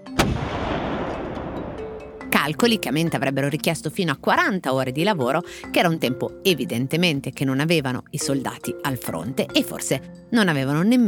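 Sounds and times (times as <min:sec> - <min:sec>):
heavy artillery cannon blast: 0:00.1 - 0:02.3
long rumbling roll and reverberation of cannon blast: 0:00.2 - 0:02.4
speech: 0:02.4 - 0:11.0.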